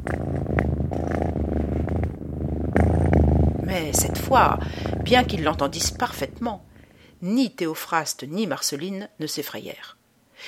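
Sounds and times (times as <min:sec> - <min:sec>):
cat purring on a desk: 0:00.0 - 0:07.2
speech: 0:03.7 - 0:10.4.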